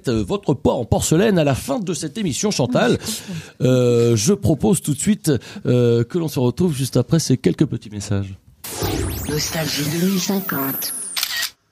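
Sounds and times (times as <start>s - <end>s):
speech: 0.0s - 11.0s
smartphone camera shutter click taking a selfie: 10.7s - 11.6s.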